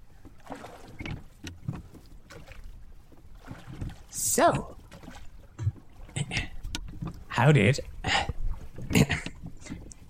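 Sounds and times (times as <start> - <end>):
oars splashing and pulling through water as a man rows: 0.0 - 10.0
small rowboat creaking: 0.0 - 10.0
speech: 4.4 - 4.8, 7.4 - 7.9.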